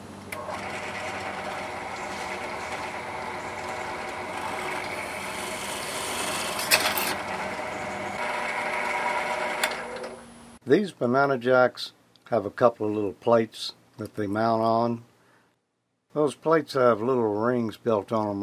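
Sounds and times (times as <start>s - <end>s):
Harbor Freight drill press motor humming: 0.3s - 10.6s
speech: 10.7s - 15.1s, 16.2s - 18.4s.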